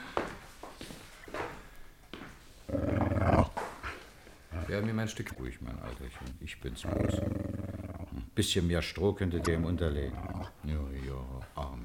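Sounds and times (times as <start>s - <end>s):
dog growling in a radio drama: 2.7s - 8.4s, 9.3s - 10.8s
speech: 4.7s - 7.6s, 8.4s - 11.5s.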